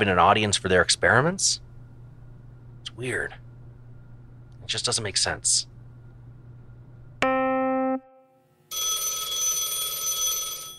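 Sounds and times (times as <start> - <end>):
speech: 0.0 - 1.6, 3.0 - 3.4, 4.7 - 5.7
telephone sharp electronic tone: 8.7 - 10.7.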